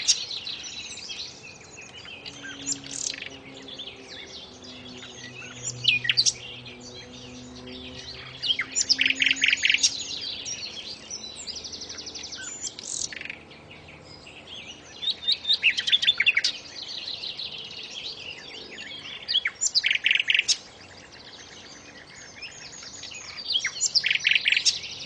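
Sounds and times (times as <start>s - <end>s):
steady low hum: 0.0s - 12.6s
common nightingale singing: 0.0s - 25.0s.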